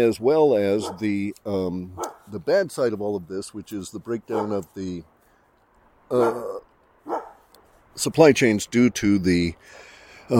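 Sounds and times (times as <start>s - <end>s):
speech: 0.0s - 5.1s, 6.1s - 6.7s, 8.0s - 10.3s
dogs barking in reaction to fireworks: 0.8s - 1.1s, 2.0s - 2.3s, 4.2s - 4.7s, 6.1s - 7.5s.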